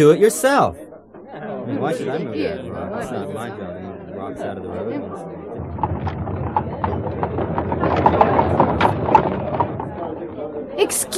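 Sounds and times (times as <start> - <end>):
speech: 0.0 - 8.2, 10.8 - 11.1
carriage wheels rumbling on the road: 5.5 - 10.8
horse hooves clip-clopping pulling a carriage: 5.6 - 10.2.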